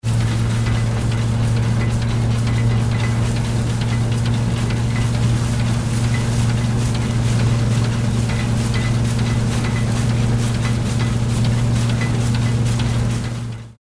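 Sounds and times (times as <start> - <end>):
steam threshing machine: 0.0 - 13.7.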